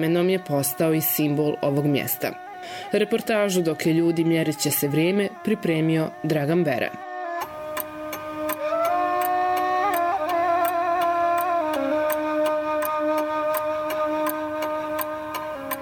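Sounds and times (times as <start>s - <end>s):
speech: 0.0s - 7.1s
soft music: 0.0s - 15.7s
clock ticking from several timepieces in a watchmaker's shop in Novi Grad: 7.4s - 15.7s.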